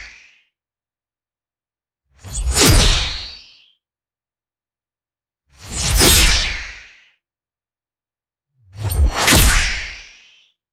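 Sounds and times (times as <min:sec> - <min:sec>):
sci-fi energy whip swings and strikes: 0:02.4 - 0:03.1, 0:08.7 - 0:10.0.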